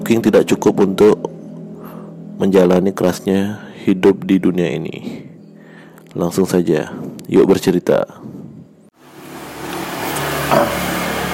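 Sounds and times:
speech: 0.1s - 1.4s, 2.4s - 5.2s, 6.2s - 8.4s, 10.5s - 10.8s
car engine humming heard from inside the cabin: 9.0s - 11.3s.

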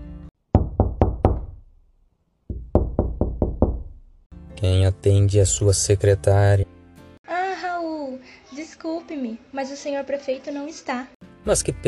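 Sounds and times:
knocking on a wooden door: 0.5s - 1.7s, 2.5s - 4.1s
speech: 4.6s - 6.7s, 9.1s - 11.8s.

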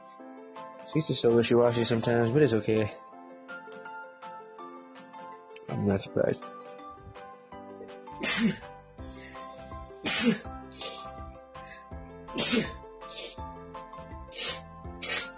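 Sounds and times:
steady music: 0.0s - 15.3s
speech: 0.9s - 3.0s, 5.8s - 6.6s, 8.4s - 8.7s, 10.2s - 10.6s, 12.5s - 12.8s
person sneezing in a fit: 8.2s - 8.7s, 10.0s - 11.1s, 12.3s - 13.4s, 14.4s - 15.3s
sniffly bursts: 8.2s - 13.4s, 14.3s - 15.3s.

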